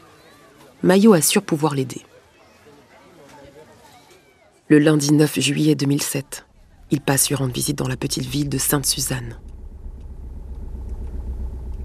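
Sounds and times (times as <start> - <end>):
speech: 0.8 - 2.1, 4.7 - 9.6
car engine running: 6.5 - 11.8.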